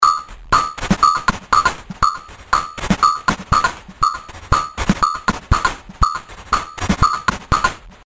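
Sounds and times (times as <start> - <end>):
lo-fi drum kit through a distortion module and envelope follower: 0.0 - 8.0.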